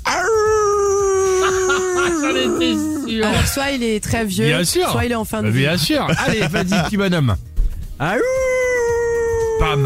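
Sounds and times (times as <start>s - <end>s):
person imitating a werewolf howl: 0.0s - 3.3s, 8.2s - 9.8s
laughter: 1.2s - 3.8s, 5.6s - 7.1s
speech: 3.2s - 8.5s, 9.6s - 9.8s.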